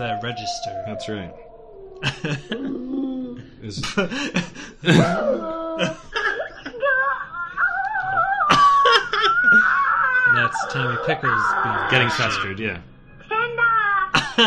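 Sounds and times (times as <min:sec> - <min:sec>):
human voice imitating a dog yipping and howling: 0:00.0 - 0:03.4, 0:04.9 - 0:06.0, 0:06.8 - 0:12.4
speech: 0:00.0 - 0:06.1, 0:10.6 - 0:12.9
laughter: 0:02.0 - 0:12.6, 0:14.2 - 0:14.4.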